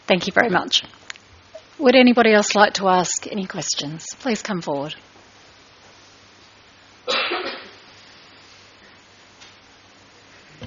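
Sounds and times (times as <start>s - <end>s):
steady hiss: 0.0s - 10.6s
speech: 0.1s - 1.0s, 1.8s - 5.1s
person coughing at a public question session: 7.1s - 7.8s.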